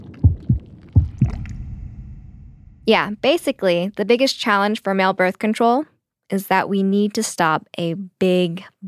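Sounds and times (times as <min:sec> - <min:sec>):
deep heartbeat sound effect: 0:00.0 - 0:03.6
speech: 0:02.9 - 0:08.8.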